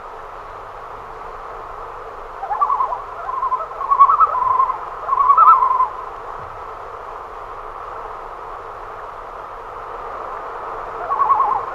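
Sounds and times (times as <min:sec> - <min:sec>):
common loon quavering call: 0:02.4 - 0:06.1, 0:10.9 - 0:11.7.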